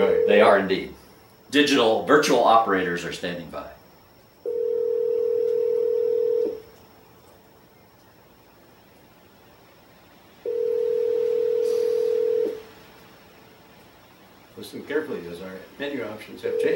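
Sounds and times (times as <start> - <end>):
ringback tone of an outgoing telephone call to a hotline: 0.0 - 0.6, 4.4 - 6.6, 10.4 - 12.6, 16.4 - 16.7
quiet hiss: 0.0 - 16.7
speech: 0.3 - 3.8, 14.6 - 16.7.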